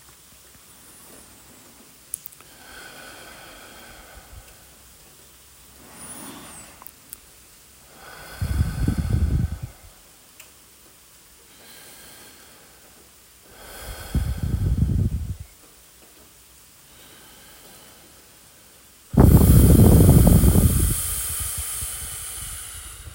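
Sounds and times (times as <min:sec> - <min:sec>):
forceful breathing during a breathing exercise: 0:02.4 - 0:04.9, 0:05.7 - 0:07.0, 0:07.8 - 0:10.0, 0:11.5 - 0:15.5, 0:16.9 - 0:23.1.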